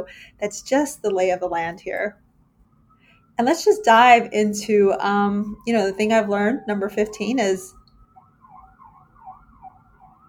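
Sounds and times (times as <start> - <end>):
speech: 0.0 - 2.2, 3.4 - 7.8
wailing emergency vehicle siren on city street: 2.7 - 10.2.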